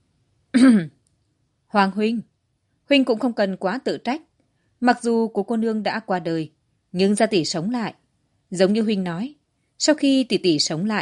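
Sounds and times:
dry cough: 0.6s - 1.0s
speech: 0.6s - 1.0s, 1.7s - 2.3s, 2.9s - 11.0s.

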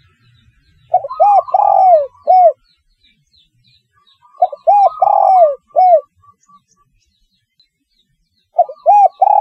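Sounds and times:
spotted dove calling: 0.9s - 2.6s, 4.3s - 6.1s, 8.6s - 9.3s.

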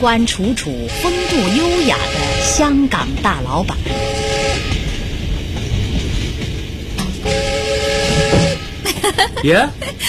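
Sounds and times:
speech: 0.0s - 4.2s, 9.1s - 10.0s
passenger train travelling from Shanghai to Shaanxi rumbling: 0.0s - 10.0s
passenger train horn: 0.9s - 2.9s, 3.8s - 4.9s, 7.2s - 8.9s
laughter: 8.8s - 10.0s.

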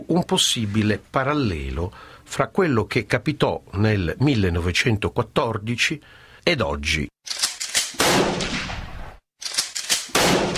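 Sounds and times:
speech: 0.1s - 7.1s
pistol gunshots in city streets in Sarajevo in 1914: 7.8s - 9.1s, 9.9s - 10.5s.

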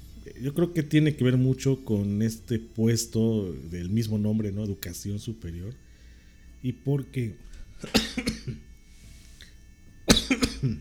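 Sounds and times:
speech: 0.2s - 5.9s, 6.6s - 8.7s, 10.3s - 10.8s
person coughing: 7.8s - 8.6s, 10.1s - 10.8s.

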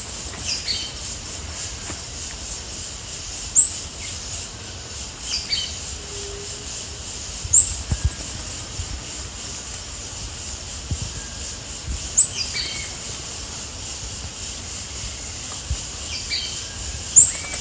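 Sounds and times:
Sao Francisco sparrow Arremon franciscanus calling: 0.0s - 1.4s, 3.2s - 5.9s, 6.7s - 8.8s, 11.0s - 14.5s, 15.1s - 17.5s
soft hiss: 0.0s - 17.5s.

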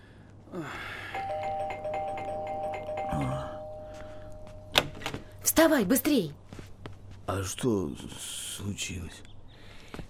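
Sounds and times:
low hum: 0.0s - 10.0s
doorbell ringing with ding-dong chimes: 1.2s - 4.8s
speech: 5.6s - 6.4s, 7.3s - 9.3s.

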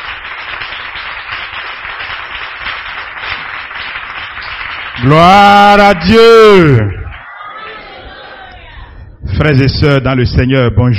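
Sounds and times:
congregation applauding at a Sunday church service: 0.0s - 7.8s
speech: 5.0s - 7.0s, 9.4s - 10.9s.

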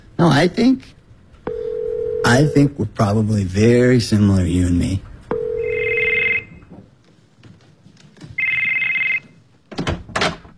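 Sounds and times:
speech: 0.2s - 1.0s, 2.2s - 5.1s
telephone ringing in bright electronic bursts: 1.5s - 2.8s, 5.3s - 6.7s, 8.4s - 9.4s.

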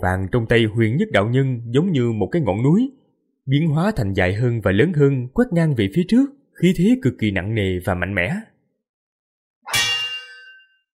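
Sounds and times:
speech: 0.0s - 8.5s
saber blade ringing with a bright metallic clang: 9.7s - 10.8s.

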